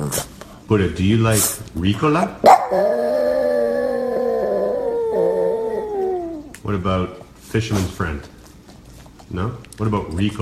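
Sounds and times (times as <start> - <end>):
speech: 0.1 - 3.2, 6.7 - 8.4, 9.3 - 10.4
Boston Terrier howling: 2.4 - 6.6.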